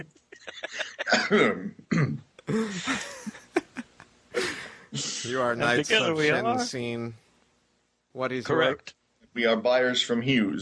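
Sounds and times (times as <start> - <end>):
laughter: 0.0 - 1.5, 2.5 - 6.4
several people coughing during an online role-playing game session: 0.6 - 3.4
throat clearing: 1.1 - 3.0
speech: 1.1 - 3.1, 5.2 - 7.2, 8.2 - 10.5.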